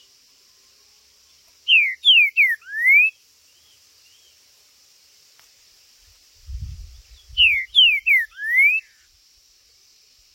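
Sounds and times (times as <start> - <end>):
Green-winged saltator whistling phrase: 1.7 - 3.2, 7.3 - 9.0.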